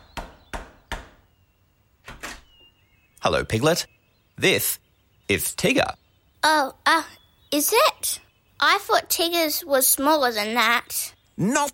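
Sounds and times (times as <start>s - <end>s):
knocking on the door of a house: 0.1s - 1.2s
speech: 3.2s - 11.7s.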